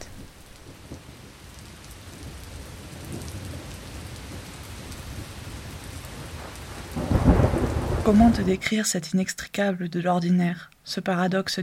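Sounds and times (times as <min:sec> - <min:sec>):
thunder rumbling: 0:00.0 - 0:08.7
rain pattering: 0:00.0 - 0:11.6
speech: 0:08.1 - 0:11.6.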